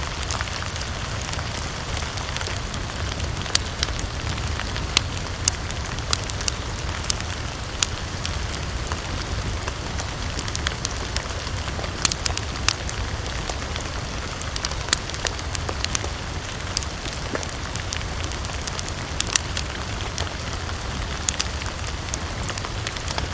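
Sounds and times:
crackling campfire: 0.0s - 23.3s
gentle rainfall: 0.0s - 23.3s.

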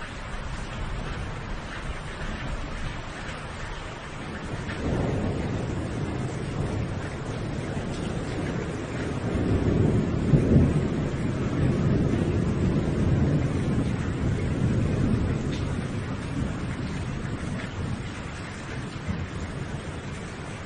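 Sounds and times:
steady rain-like hiss: 0.0s - 20.6s
deep rolling thunder: 4.1s - 20.6s.

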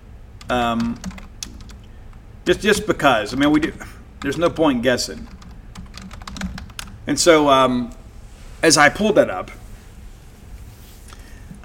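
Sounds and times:
typing on a computer keyboard: 0.4s - 2.2s, 3.3s - 7.0s
person's voice: 0.5s - 1.1s, 2.4s - 5.3s, 7.0s - 8.0s, 8.6s - 9.6s
speech: 0.5s - 1.3s, 2.4s - 5.4s, 7.1s - 8.0s, 8.6s - 9.6s.

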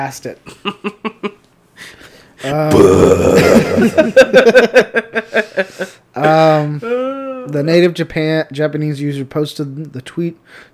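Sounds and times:
speech: 0.0s - 1.2s, 2.4s - 10.7s
burp into a microphone after a drink of water: 2.5s - 3.8s
rhythmic chuckling: 3.4s - 6.5s.

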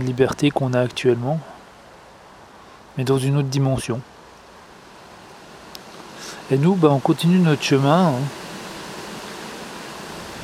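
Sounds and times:
speech: 0.0s - 1.5s, 3.0s - 4.1s, 6.5s - 8.4s
wind blowing outdoors on a hill path: 5.4s - 10.4s.

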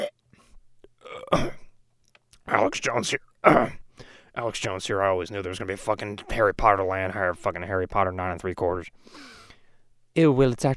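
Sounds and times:
loud rumbling burp: 1.0s - 1.7s, 3.4s - 3.8s
speech: 2.7s - 3.8s, 4.4s - 9.4s, 10.2s - 10.7s.

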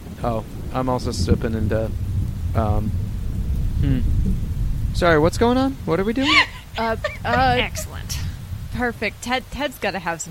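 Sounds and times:
steady rain falling: 0.0s - 10.3s
speech: 0.2s - 3.0s, 3.8s - 8.2s, 8.8s - 10.3s
laughter: 6.1s - 8.2s.

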